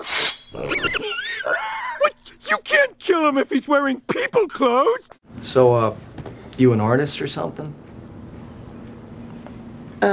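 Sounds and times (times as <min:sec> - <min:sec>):
pig grunting and squealing: 0:00.0 - 0:01.8
speech: 0:03.2 - 0:07.8.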